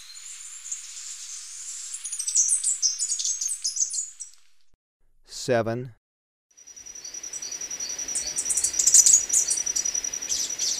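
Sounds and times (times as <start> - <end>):
three-striped warbler singing in Ecuador: 0.0 - 4.4, 6.6 - 10.7
speech: 5.5 - 6.0.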